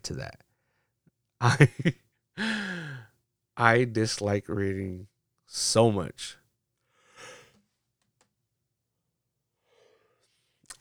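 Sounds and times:
speech: 0:00.1 - 0:00.5, 0:01.4 - 0:02.9, 0:03.6 - 0:06.4
laughter: 0:01.4 - 0:03.0
breathy exhale: 0:02.4 - 0:03.0
person yawning: 0:02.4 - 0:03.0.

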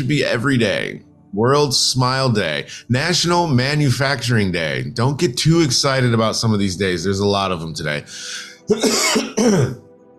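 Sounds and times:
speech: 0:00.0 - 0:09.8
rough throaty coughs from a lingering COVID cough: 0:08.6 - 0:09.8.

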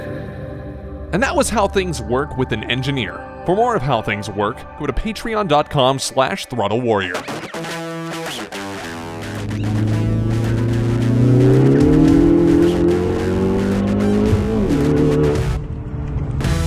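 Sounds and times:
speech: 0:01.1 - 0:07.5
Ford Focus ST engine revving through gear changes: 0:07.5 - 0:16.6.

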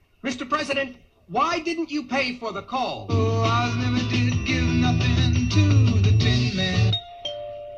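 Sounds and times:
speech: 0:00.2 - 0:04.2
loud doorbell playing a multi-note chime melody: 0:04.2 - 0:07.7.

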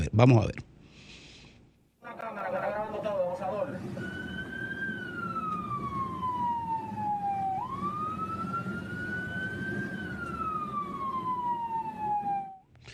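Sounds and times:
speech: 0:00.1 - 0:00.7
steady engine and traffic rumble: 0:01.6 - 0:12.8
ambulance siren yelping and wailing: 0:02.0 - 0:12.7.

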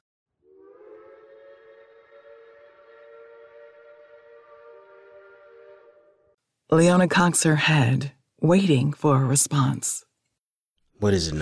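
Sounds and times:
train whistle blowing a multi-toned chord: 0:00.4 - 0:06.4
speech: 0:06.7 - 0:10.1, 0:11.0 - 0:11.4.

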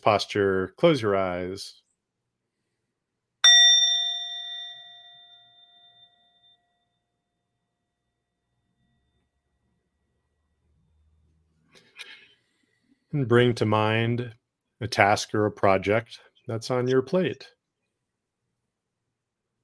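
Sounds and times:
speech: 0:00.0 - 0:01.8, 0:13.1 - 0:17.6
single meditation bell struck once: 0:03.4 - 0:07.0.

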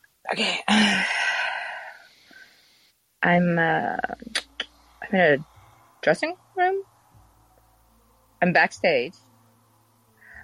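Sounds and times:
speech: 0:00.3 - 0:01.2, 0:03.2 - 0:04.4, 0:05.1 - 0:06.9, 0:08.4 - 0:09.3
person taking a deep breath: 0:00.7 - 0:02.6.

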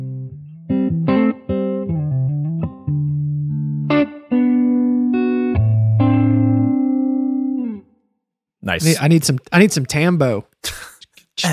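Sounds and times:
electric guitar chords through an amp with reverb: 0:00.0 - 0:07.9
speech: 0:08.7 - 0:11.5.

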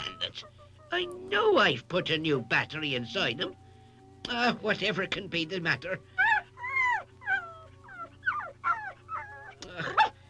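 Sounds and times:
faint steady hum: 0:00.0 - 0:10.2
speech: 0:00.4 - 0:03.6, 0:04.2 - 0:06.1
small dog yipping and barking: 0:06.2 - 0:10.2.

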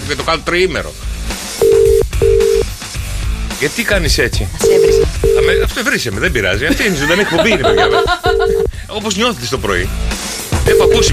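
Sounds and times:
speech: 0:00.1 - 0:01.2, 0:03.6 - 0:11.1
ringback tones on a phone line for an unanswered outgoing call: 0:01.6 - 0:02.6, 0:04.6 - 0:05.7, 0:07.7 - 0:08.7, 0:10.7 - 0:11.1
laughter: 0:06.6 - 0:08.7.

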